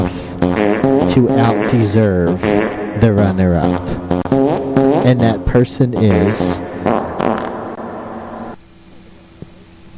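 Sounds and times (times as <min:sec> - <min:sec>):
loud wet sputtering fart sound effect: 0:00.4 - 0:02.8, 0:03.8 - 0:05.2, 0:06.1 - 0:07.8
speech: 0:00.4 - 0:04.1, 0:05.0 - 0:07.0.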